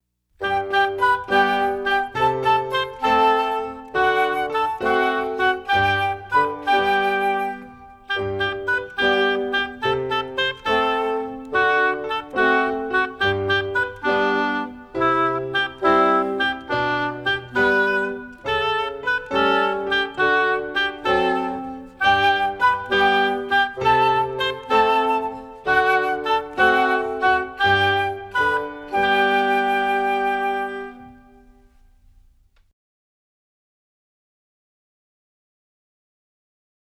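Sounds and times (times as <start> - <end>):
music: 0.4 - 32.7.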